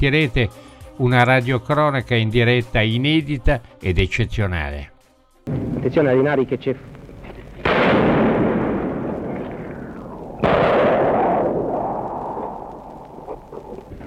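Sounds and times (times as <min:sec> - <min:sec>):
speech: 0:00.0 - 0:04.9, 0:05.5 - 0:06.9
gunfire blasts with rolling rumble amid city ruins during liberation: 0:05.5 - 0:14.0.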